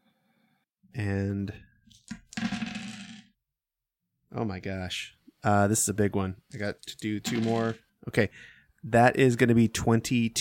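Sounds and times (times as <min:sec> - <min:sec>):
speech: 0:01.0 - 0:01.6, 0:04.4 - 0:10.3
dice clattering across a hard tabletop: 0:01.9 - 0:03.3, 0:06.8 - 0:07.8.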